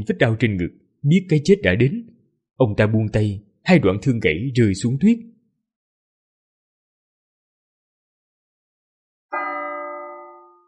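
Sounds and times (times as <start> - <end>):
speech: 0.0 - 5.3
distant imperial palace bell tolling over a snowy lake: 9.3 - 10.6.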